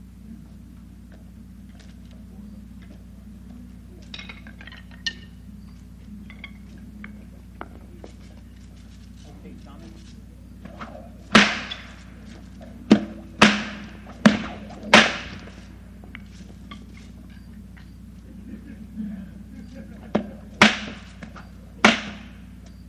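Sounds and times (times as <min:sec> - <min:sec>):
low steady hum: 0:00.0 - 0:22.8
whip cracks: 0:10.7 - 0:15.7, 0:20.5 - 0:22.4
laughter: 0:17.6 - 0:20.6.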